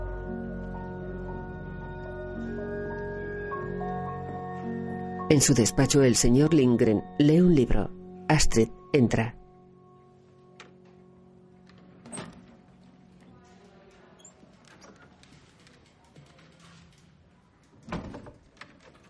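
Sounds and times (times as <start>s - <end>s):
speech: 5.3s - 9.4s
office door being closed: 12.0s - 12.6s.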